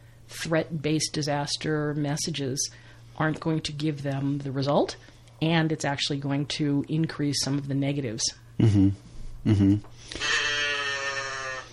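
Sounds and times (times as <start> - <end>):
speech: 0.4 - 10.3
cow mooing: 10.2 - 11.7.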